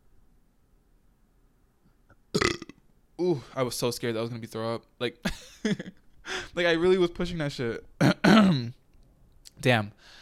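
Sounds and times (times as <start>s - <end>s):
person burping: 2.3s - 2.8s, 8.0s - 8.7s
speech: 3.2s - 8.8s, 9.6s - 10.1s.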